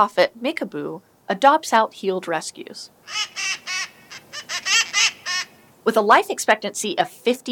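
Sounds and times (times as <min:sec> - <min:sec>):
speech: 0:00.0 - 0:03.8, 0:05.8 - 0:07.5
cherry-headed conure screeching: 0:03.0 - 0:05.6.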